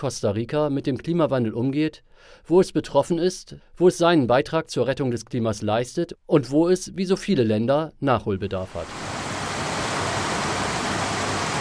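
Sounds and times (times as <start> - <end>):
speech: 0.0 - 9.0
steady rain falling in Costa Rica: 8.8 - 11.6.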